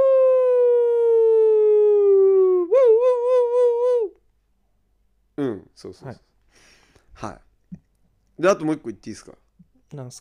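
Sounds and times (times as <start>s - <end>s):
voice imitating an ambulance siren: 0.0s - 4.2s
speech: 5.4s - 6.3s, 7.2s - 7.8s, 8.4s - 10.1s.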